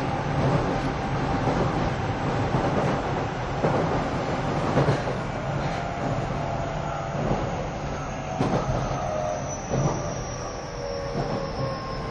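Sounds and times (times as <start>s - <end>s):
Keio 5000 series commuter train running: 0.0s - 12.1s
thin metallic squeals: 6.8s - 12.1s.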